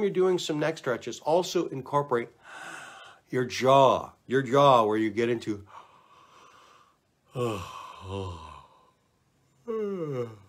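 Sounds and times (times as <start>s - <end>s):
speech: 0.0s - 2.7s, 3.3s - 5.8s, 7.4s - 8.4s, 9.7s - 10.4s
person yawning: 7.3s - 9.0s, 9.6s - 10.4s.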